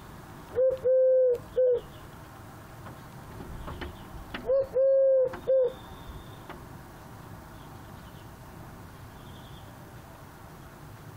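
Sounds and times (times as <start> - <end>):
Eurasian collared dove cooing: 0.5 - 1.9, 4.4 - 6.2.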